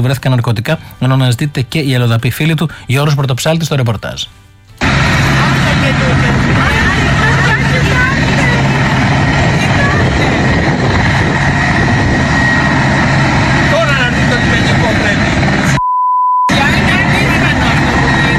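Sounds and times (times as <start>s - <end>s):
speech: 0.0s - 4.4s, 5.8s - 6.8s
helicopter engine and rotor roaring while landing on a beach: 4.8s - 15.8s, 16.5s - 18.3s.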